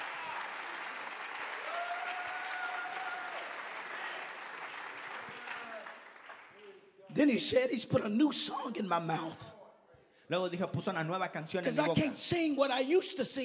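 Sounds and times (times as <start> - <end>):
congregation clapping: 0.0 - 7.0
speech: 7.2 - 9.6, 10.3 - 13.4.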